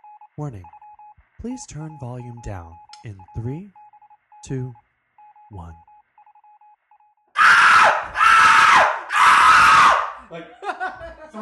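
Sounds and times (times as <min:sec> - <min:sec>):
speech: 0:00.4 - 0:00.8, 0:01.4 - 0:03.8, 0:04.4 - 0:04.8, 0:05.5 - 0:05.9, 0:10.3 - 0:11.3
man screaming on an amusement ride: 0:07.4 - 0:10.2
laughter: 0:10.2 - 0:11.3.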